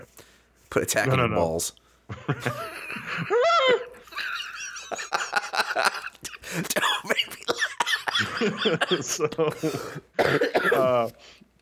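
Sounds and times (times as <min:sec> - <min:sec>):
speech: 0:00.7 - 0:04.3, 0:05.8 - 0:06.9, 0:08.4 - 0:11.4
laughter: 0:02.1 - 0:10.0
short sharp coughs: 0:06.3 - 0:08.2, 0:08.8 - 0:11.1.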